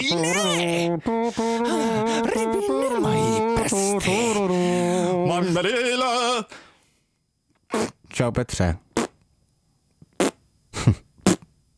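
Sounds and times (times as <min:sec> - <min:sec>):
speech: 0:00.0 - 0:06.6, 0:08.2 - 0:08.8
raspy fart sounds: 0:07.7 - 0:08.1, 0:08.9 - 0:09.2, 0:10.1 - 0:11.5.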